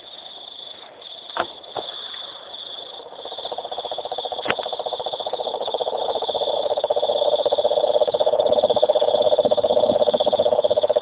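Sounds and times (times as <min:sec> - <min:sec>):
cane toad Rhinella marina trill call: 0:03.4 - 0:10.9.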